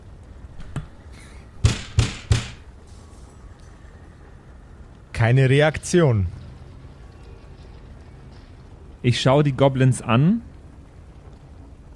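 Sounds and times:
firm knocking on a wooden door: 0:01.6 - 0:02.6
speech: 0:05.2 - 0:06.4, 0:09.0 - 0:10.5.

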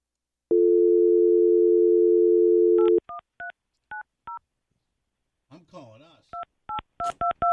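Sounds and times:
telephone dial tone: 0:00.5 - 0:03.0.

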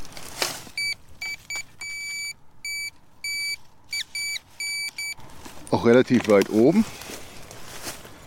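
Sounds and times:
brief scraping rustle: 0:00.0 - 0:00.8, 0:05.2 - 0:08.2
metal detector beeping on a find: 0:00.8 - 0:05.2
speech: 0:05.8 - 0:07.1.

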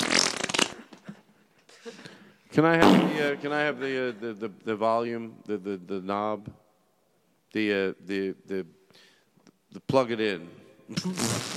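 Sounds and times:
loud sputtering fart sound effect with reverb: 0:00.0 - 0:00.8, 0:02.8 - 0:03.3, 0:11.0 - 0:11.5
speech: 0:02.6 - 0:06.6, 0:07.5 - 0:09.1, 0:09.7 - 0:11.5.

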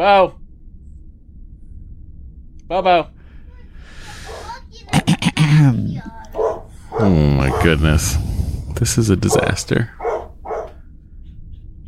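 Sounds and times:
speech: 0:00.0 - 0:00.4, 0:02.7 - 0:03.2, 0:05.0 - 0:06.2, 0:07.0 - 0:10.0
low steady rumble: 0:00.0 - 0:11.8
dog barking: 0:04.2 - 0:04.5, 0:06.3 - 0:07.8, 0:09.3 - 0:11.4.

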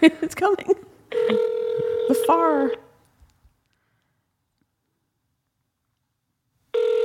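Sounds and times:
speech: 0:00.0 - 0:01.4, 0:02.3 - 0:02.8
landline telephone tone: 0:01.1 - 0:02.8, 0:06.7 - 0:07.0.

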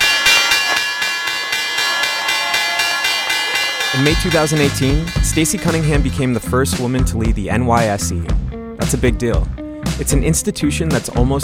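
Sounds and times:
loud stock exchange opening bell ringing: 0:00.0 - 0:06.8
speech: 0:03.9 - 0:11.4.

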